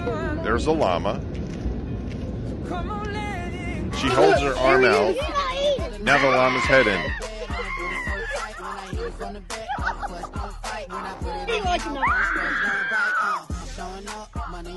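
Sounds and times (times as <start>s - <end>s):
speech: 0.4s - 1.5s, 2.6s - 3.4s, 4.0s - 7.3s, 9.0s - 14.7s
elderly woman screaming at a llama: 6.1s - 8.7s, 11.9s - 13.5s
laughter: 6.1s - 12.7s.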